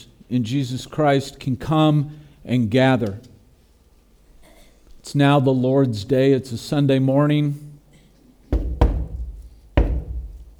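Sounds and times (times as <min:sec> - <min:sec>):
speech: 0:00.3 - 0:03.3, 0:05.1 - 0:07.6
knocks on the wooden front door of a home: 0:08.5 - 0:10.5.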